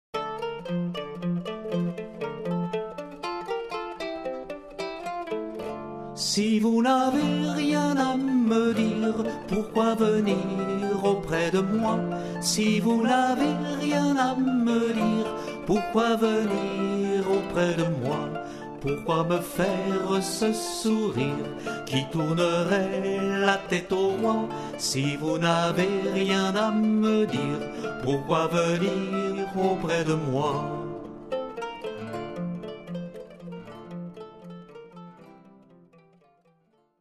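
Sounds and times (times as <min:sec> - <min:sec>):
chanson song: 0:00.2 - 0:36.3.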